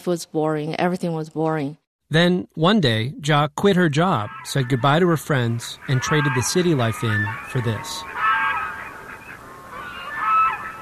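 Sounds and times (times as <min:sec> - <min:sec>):
speech: 0:00.0 - 0:08.2
geese honking in a noisy chorus: 0:03.8 - 0:10.8.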